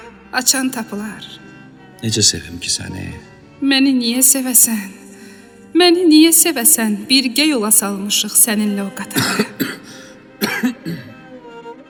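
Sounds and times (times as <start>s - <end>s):
speech: 0.3s - 5.0s, 5.7s - 9.8s
quiet breathing: 5.0s - 5.7s
smoker coughing badly: 9.2s - 11.2s.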